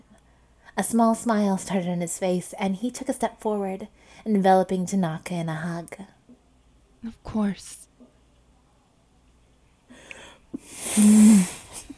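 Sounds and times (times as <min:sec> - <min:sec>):
speech: 0:00.8 - 0:06.2, 0:07.0 - 0:07.9, 0:10.5 - 0:11.6
faint sniffs and breaths: 0:09.9 - 0:11.9
nose blowing: 0:10.5 - 0:11.9.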